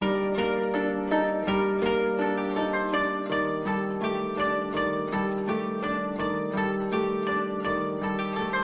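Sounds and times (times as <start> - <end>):
shamisen loop: 0.0 - 8.6.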